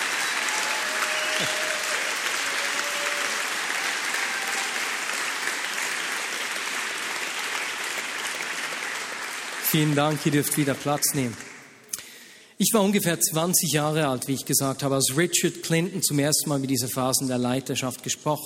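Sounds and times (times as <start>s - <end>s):
faint tonal whistles from audience: 0.0s - 2.1s
large audience applause: 0.0s - 11.6s
speech: 1.4s - 1.6s, 9.7s - 11.5s, 12.6s - 18.4s.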